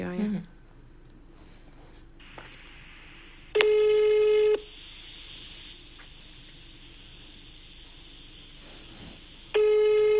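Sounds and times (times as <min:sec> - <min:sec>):
telephone line hiss: 0:02.2 - 0:10.1
telephone ringback tone: 0:03.6 - 0:04.7, 0:09.6 - 0:10.1.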